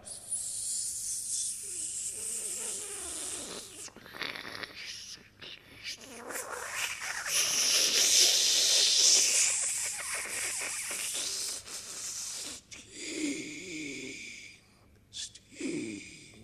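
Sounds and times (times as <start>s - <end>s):
voice imitating hissing steam in a sound poem: 0.0s - 16.4s.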